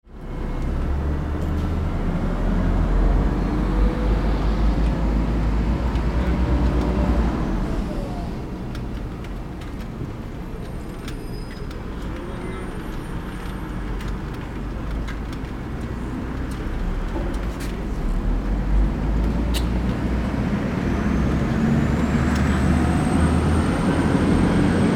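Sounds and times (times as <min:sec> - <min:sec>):
city street noise: 0:00.0 - 0:24.9.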